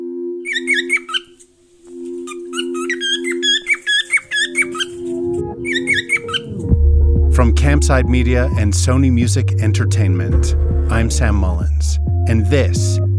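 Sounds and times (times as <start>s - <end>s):
bird squawking: 0.4s - 6.6s
speech: 7.4s - 13.1s.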